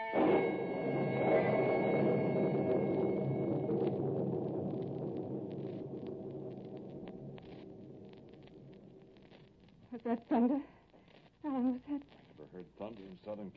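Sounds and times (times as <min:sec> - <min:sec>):
low distant rumble of thunder: 0:00.1 - 0:09.1
speech: 0:10.1 - 0:10.7, 0:13.1 - 0:13.5.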